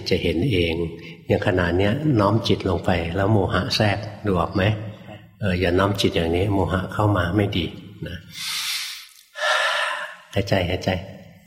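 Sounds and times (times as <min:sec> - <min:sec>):
speech: 0:00.1 - 0:08.6, 0:10.3 - 0:11.2
person gasping: 0:08.3 - 0:10.3
sharp forceful breaths: 0:08.3 - 0:10.3.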